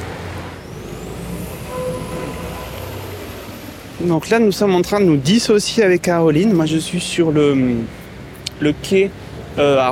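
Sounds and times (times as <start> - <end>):
steady mechanical rumble of a tram at a tram stop in Recouvrance: 0.0 - 5.6
thin high whine: 0.6 - 4.6
faint tonal hums: 0.8 - 4.0
speech: 4.0 - 8.0, 8.6 - 9.9.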